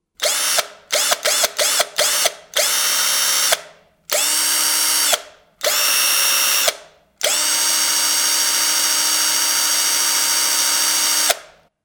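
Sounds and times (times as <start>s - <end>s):
screwdriver: 0.2s - 11.6s.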